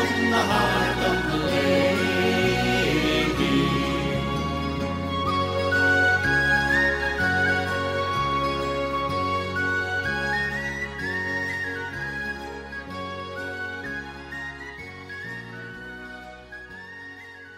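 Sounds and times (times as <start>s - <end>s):
bouncy folk band accompaniment with a regular bass pulse: 0.0s - 17.3s
bright high whistle melody: 0.0s - 17.5s.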